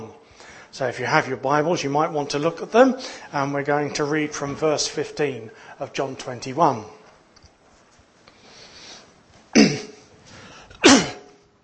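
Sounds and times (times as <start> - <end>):
speech: 0.8 - 7.0
person coughing: 9.5 - 10.1, 10.8 - 11.4
raspy throat clearing: 9.5 - 10.1, 10.8 - 11.4.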